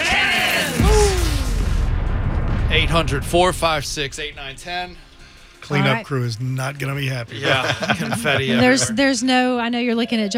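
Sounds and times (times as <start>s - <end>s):
people whooping: 0.0s - 1.6s
cannon blast: 0.7s - 5.2s
speech: 2.9s - 10.3s
laughter: 7.2s - 9.2s.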